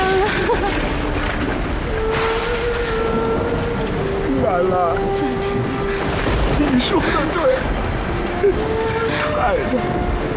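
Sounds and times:
low rumble of thunder: 0.0s - 10.3s
steady rain: 0.0s - 10.3s
speech: 6.8s - 7.5s, 8.4s - 10.2s.

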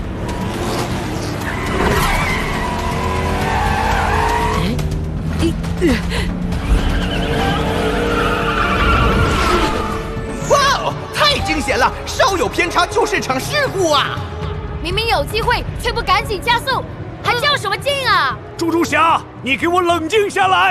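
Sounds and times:
race car engine roar: 0.0s - 10.4s
race car tires screeching on a racetrack: 0.0s - 14.4s
speech: 13.2s - 20.7s.

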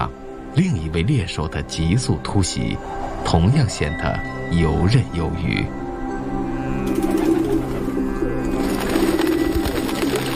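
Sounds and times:
speech: 0.0s - 5.8s
pigeons cooing around an old castle: 6.8s - 10.3s.

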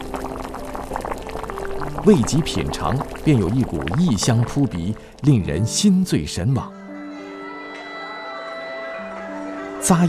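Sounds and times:
boiling water pouring into a cup to brew locust-flower tea: 0.0s - 6.3s
speech: 2.0s - 6.8s, 9.9s - 10.0s.

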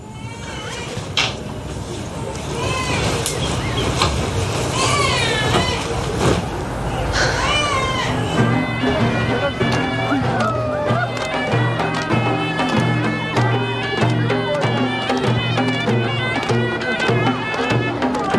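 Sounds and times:
baby crying: 0.0s - 1.2s, 2.5s - 3.2s, 4.7s - 6.0s, 7.0s - 18.3s
indoor noise and murmuring: 0.0s - 18.3s
laughter: 0.8s - 18.3s.

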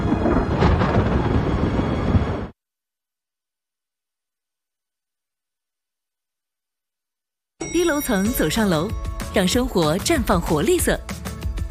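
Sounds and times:
heavy continuous roll of thunder: 0.0s - 2.6s
speech: 7.9s - 11.3s.

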